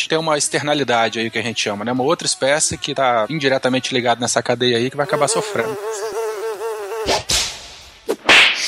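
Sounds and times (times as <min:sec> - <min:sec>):
speech: 0:00.0 - 0:06.2
bee buzzing in flight: 0:05.0 - 0:07.3.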